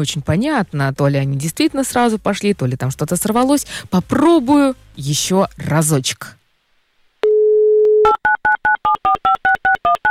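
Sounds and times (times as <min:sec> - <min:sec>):
speech: 0:00.0 - 0:06.4
telephone dial tone: 0:07.2 - 0:10.1.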